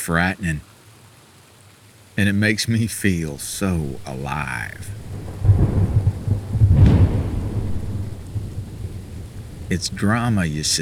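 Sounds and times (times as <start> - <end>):
speech: 0.0 - 0.7, 2.2 - 5.2, 9.7 - 10.7
steady rain: 0.0 - 10.7
deep rolling thunder of a thunderstorm: 3.2 - 10.7.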